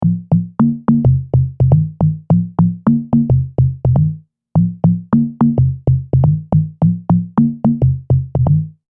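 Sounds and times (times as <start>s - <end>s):
synthesized conga on a Prophet '08 synthesizer: 0.0s - 8.8s.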